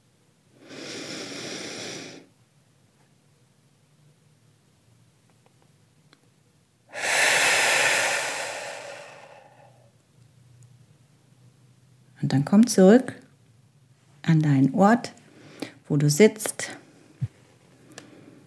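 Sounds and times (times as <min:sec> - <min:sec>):
forceful exhale through the mouth during a guided meditation breathing exercise: 0:00.6 - 0:02.3, 0:06.9 - 0:09.9
speech: 0:12.3 - 0:13.2, 0:14.3 - 0:15.2, 0:15.9 - 0:16.7.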